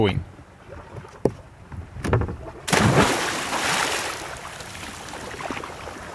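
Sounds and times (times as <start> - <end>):
speech: 0.0 - 0.3
water bubbling and sloshing: 0.5 - 6.1
woman jumping into cold water with a loud splash: 2.6 - 6.1.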